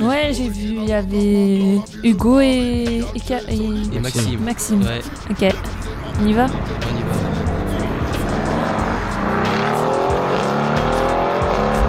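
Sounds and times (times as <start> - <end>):
speech: 0.0 - 7.3
Mercedes AMG sports car engine roaring as it accelerates: 2.4 - 11.8.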